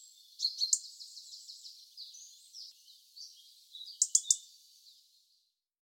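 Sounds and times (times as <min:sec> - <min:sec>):
European robin sharp ticking calls: 0:00.4 - 0:01.5, 0:03.8 - 0:04.6.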